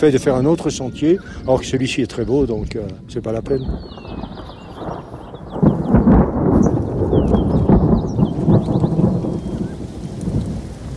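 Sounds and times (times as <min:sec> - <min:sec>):
speech: 0:00.0 - 0:04.4
faint birds chirping: 0:00.0 - 0:10.9
deep sustained rumbling thunder: 0:02.6 - 0:10.9
steady rain: 0:02.6 - 0:10.9.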